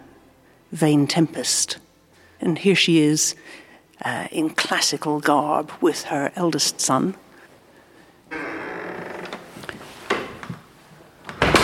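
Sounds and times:
speech: 0:00.7 - 0:07.2
heavy mahogany doors creaking open in a historic house: 0:08.3 - 0:10.5
heavy mahogany door thud: 0:11.4 - 0:11.6.

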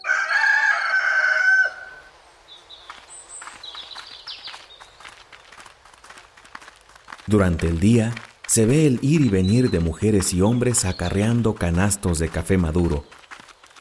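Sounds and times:
rooster crowing at dawn: 0:00.0 - 0:02.1
faint chirping birds outdoors: 0:01.4 - 0:13.7
speech: 0:07.3 - 0:13.2.

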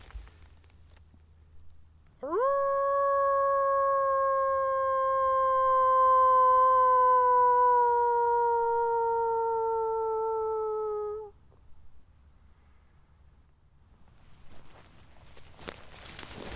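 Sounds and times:
rustling: 0:00.0 - 0:01.8, 0:14.0 - 0:16.5
person imitating a wolf howl in wolf country in Germany: 0:02.2 - 0:11.4.

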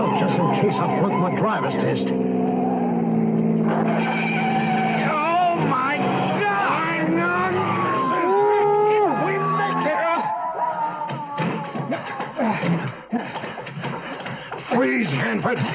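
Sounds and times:
car engine roaring at speed during a highway chase: 0:00.0 - 0:10.4
car tires squealing during a highway chase: 0:00.0 - 0:12.6
speech: 0:00.6 - 0:02.7, 0:03.7 - 0:04.4, 0:15.4 - 0:15.7
laughter: 0:08.3 - 0:14.6.

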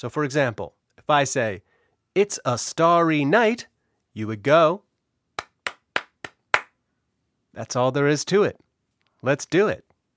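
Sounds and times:
speech: 0:00.0 - 0:04.9, 0:07.6 - 0:08.6, 0:09.2 - 0:09.9
sharp hand claps in the rhythm of a phrase: 0:05.4 - 0:06.8.

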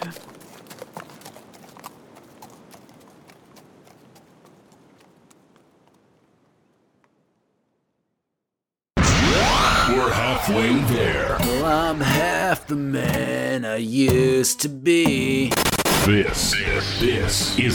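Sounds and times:
horse hooves trotting off: 0:00.0 - 0:07.4
sudden loud burst: 0:09.0 - 0:11.8
speech: 0:10.0 - 0:17.7.

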